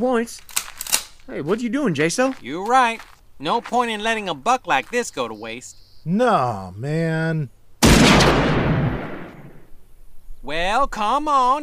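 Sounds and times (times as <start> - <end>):
speech: 0.0 - 0.6, 1.3 - 7.6, 10.4 - 11.6
gunshot fired at a twelve-point buck at a deer camp: 7.8 - 9.6.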